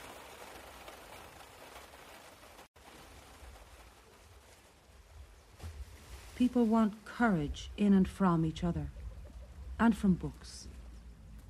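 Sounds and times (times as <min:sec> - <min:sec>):
heavy rain drumming on a moving car: 0:00.0 - 0:06.4
low road rumble: 0:00.1 - 0:11.4
speech: 0:06.4 - 0:09.0, 0:09.8 - 0:10.7.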